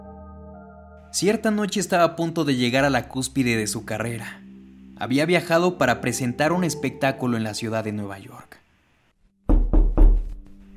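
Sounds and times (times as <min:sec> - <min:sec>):
speech: 0:01.1 - 0:04.4, 0:05.0 - 0:08.6
firm knocks on a wooden dressing room door: 0:09.5 - 0:10.3.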